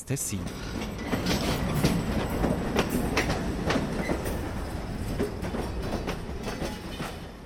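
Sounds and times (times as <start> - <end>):
speech: 0.1 - 1.2
freight train wheels clattering on rails: 0.4 - 7.4.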